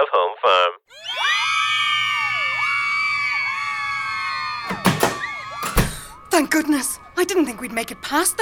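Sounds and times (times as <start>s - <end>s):
speech: 0.0s - 1.0s, 6.4s - 8.4s
dense crowd of women screaming and shrieking: 0.9s - 7.2s.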